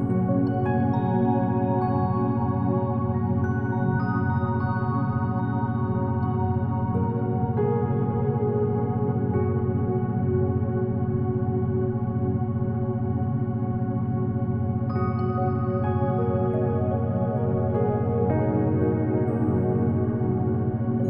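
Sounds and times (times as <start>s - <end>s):
soft ambient relaxation music with beta binaural beats: 0.0s - 21.0s.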